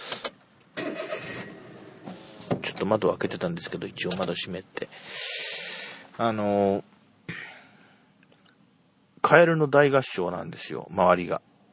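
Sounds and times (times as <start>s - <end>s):
neighbouring car engine starting in a convenience store parking lot: 0.8s - 4.5s
speech: 2.8s - 5.2s, 6.2s - 6.9s, 9.3s - 11.5s.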